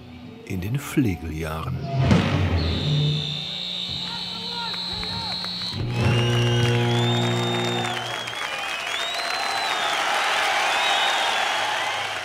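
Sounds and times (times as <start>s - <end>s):
speech: 0.5s - 2.8s
crowd cheering: 0.6s - 12.2s
whistles from the crowd: 1.8s - 12.2s
audience applauding: 3.1s - 12.2s.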